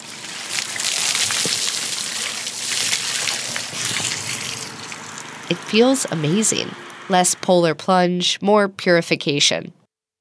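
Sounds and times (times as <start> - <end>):
bucket of cold water poured over head: 0.0 - 5.8
speech: 5.5 - 9.8.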